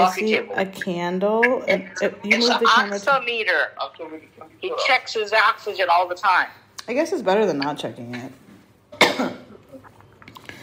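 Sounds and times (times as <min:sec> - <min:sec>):
speech: 0:00.0 - 0:08.4, 0:09.2 - 0:09.4
person coughing during a phone call: 0:09.0 - 0:09.8.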